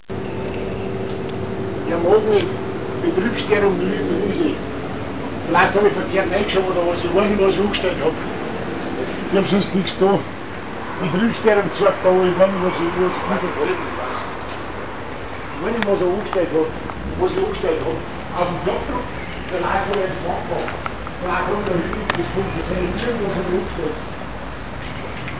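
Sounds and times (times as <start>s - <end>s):
interference noise: 0.0s - 25.3s.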